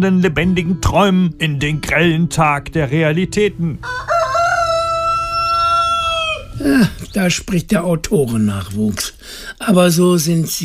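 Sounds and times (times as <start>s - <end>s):
speech: 0.0s - 4.1s, 6.6s - 10.6s
neighbour's rooster crowing: 3.8s - 6.6s.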